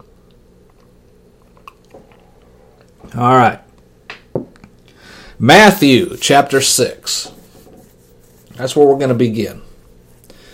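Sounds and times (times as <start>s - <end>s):
mouth and swallowing noises: 0.0s - 3.0s
person sipping water: 0.0s - 3.0s
faint steady hum: 0.0s - 10.5s
speech: 3.1s - 3.6s, 5.4s - 7.4s, 8.6s - 9.7s.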